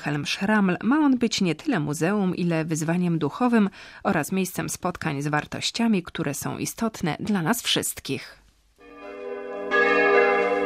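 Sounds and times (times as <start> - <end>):
speech: 0.0 - 8.4
church bells ringing at dawn: 8.8 - 10.6.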